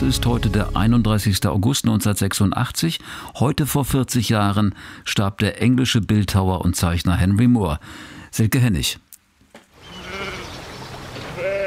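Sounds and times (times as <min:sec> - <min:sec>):
speech: 0:00.0 - 0:09.0
sheep bleating while grazing around large bronze sculptures: 0:09.9 - 0:10.6, 0:11.3 - 0:11.6.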